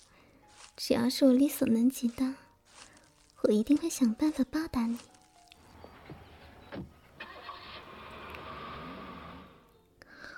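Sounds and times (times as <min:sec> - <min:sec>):
speech: 0:00.8 - 0:02.4, 0:03.4 - 0:05.1
car engine starting: 0:05.7 - 0:09.7.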